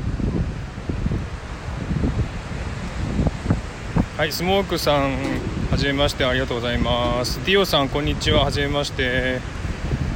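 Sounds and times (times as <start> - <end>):
rough surf at Bondi Beach in Sydney during bad weather: 0.0 - 10.1
strong gusting wind buffeting the microphone at a beach in bad weather: 0.0 - 10.1
speech: 4.2 - 9.6
low thumps: 4.9 - 8.2.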